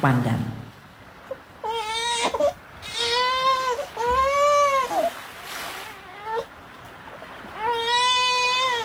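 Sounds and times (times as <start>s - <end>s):
speech: 0.0s - 0.6s
baby crying in drawn-out wails: 1.6s - 5.2s, 5.8s - 6.5s, 7.6s - 8.8s.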